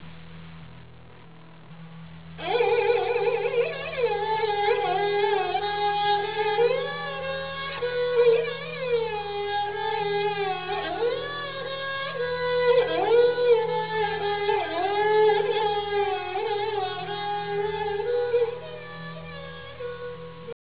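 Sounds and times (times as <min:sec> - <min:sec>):
sarangi: 0:02.3 - 0:20.5.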